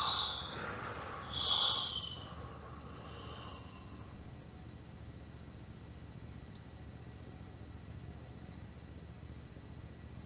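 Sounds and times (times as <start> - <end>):
hissing breath through the nose: 0.0 - 4.2.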